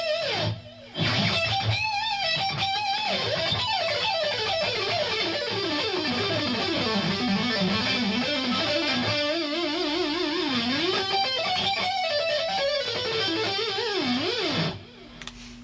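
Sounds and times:
loud electric guitar lead with chorus and echo: 0.0s - 15.1s.

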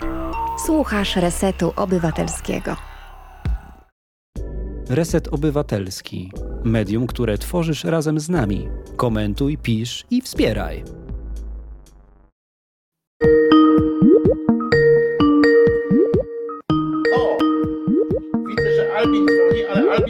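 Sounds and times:
speech: 0.7s - 2.9s, 4.9s - 11.0s, 13.2s - 13.4s
melodic phone ringtone of an incoming call: 13.2s - 20.0s.

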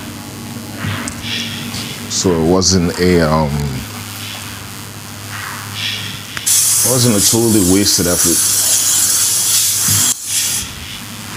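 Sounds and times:
speech: 2.2s - 3.8s, 6.9s - 8.7s
spray bottle hissing, spraying a cleaner onto a couch: 6.4s - 10.7s.

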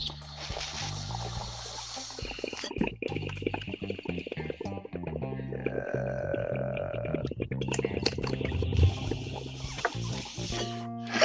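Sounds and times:
concentrate sizzling on a hot nail while taking a dab: 0.2s - 4.5s, 8.3s - 10.8s
water bubbling and gurgling: 0.3s - 11.2s.

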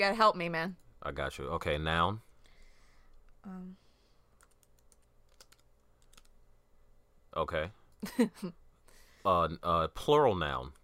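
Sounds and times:
speech: 0.0s - 2.3s, 3.4s - 3.8s, 7.4s - 8.6s, 9.2s - 10.8s
quiet room hum: 0.0s - 10.8s
computer keyboard typing clicks: 4.4s - 6.3s.

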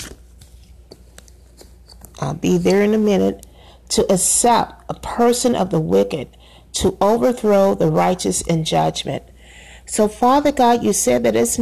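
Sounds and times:
book page turning with soft crisp paper crackles: 0.0s - 2.1s
low steady hum: 0.0s - 11.6s
speech: 2.2s - 9.3s, 9.9s - 11.6s.

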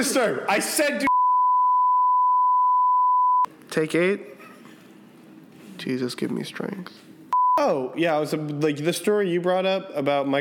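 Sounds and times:
speech: 0.0s - 1.1s, 3.7s - 4.4s, 5.8s - 10.3s
phone long steady electronic beep: 1.1s - 3.5s.

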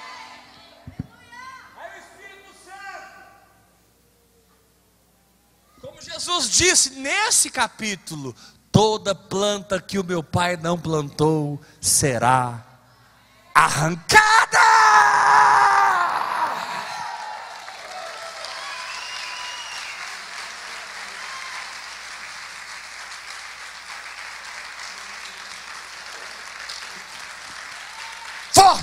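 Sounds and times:
speech: 6.0s - 12.7s, 13.6s - 14.5s
people shouting: 14.2s - 17.4s
church audience applauding: 16.9s - 28.8s.

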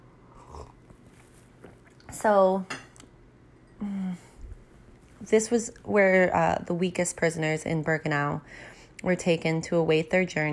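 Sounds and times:
person sipping coffee: 0.2s - 2.1s
speech: 2.2s - 2.8s, 5.3s - 10.5s
short satisfied voiced sigh: 3.8s - 4.4s.

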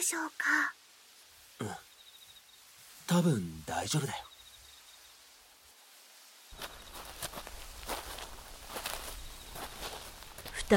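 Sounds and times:
speech: 0.0s - 0.8s, 1.6s - 1.9s, 3.1s - 4.3s
two people's footsteps crunching over rustly ground: 6.5s - 10.7s.

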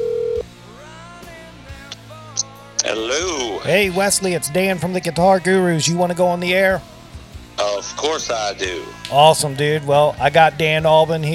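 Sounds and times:
electronic telephone ringback tone on an outgoing rotary-dialed call: 0.0s - 0.4s
soft telephone line hiss: 0.0s - 0.4s
speech: 3.0s - 6.9s, 7.8s - 11.3s.

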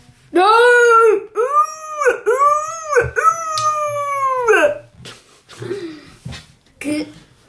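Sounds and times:
voice imitating a whale call: 0.8s - 4.9s.

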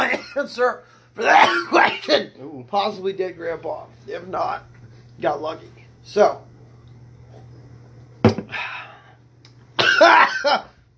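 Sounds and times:
harsh raspy coughing: 0.0s - 0.5s, 1.2s - 2.3s, 9.8s - 10.8s
faint low hum: 0.0s - 10.9s
speech: 0.4s - 6.5s, 10.0s - 10.7s.

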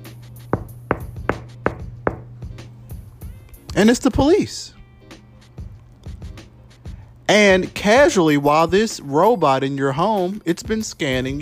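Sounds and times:
firm knocking on a door: 0.6s - 2.5s
speech: 3.8s - 4.8s, 7.3s - 11.3s.

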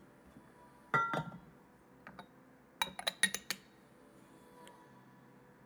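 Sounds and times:
small glass teapot clinking while tea is poured: 0.9s - 1.4s, 2.8s - 3.6s.

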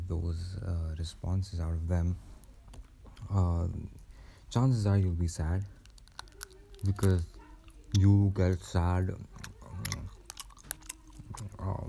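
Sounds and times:
speech: 0.1s - 2.4s, 3.2s - 5.8s, 6.8s - 9.9s, 11.4s - 11.8s
loud crunchy chewing of food: 5.6s - 11.8s
wet mouth noises: 5.7s - 11.8s.

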